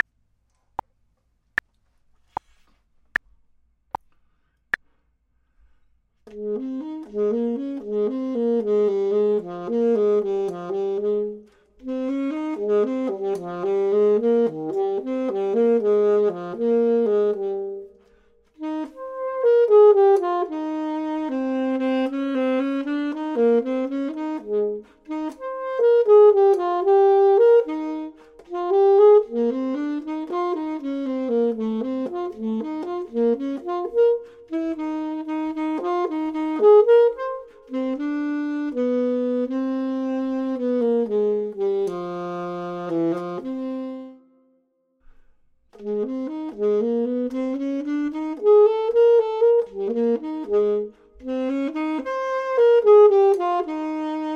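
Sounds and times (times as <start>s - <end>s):
clarinet: 6.2s - 54.3s
saxophone: 6.2s - 54.3s.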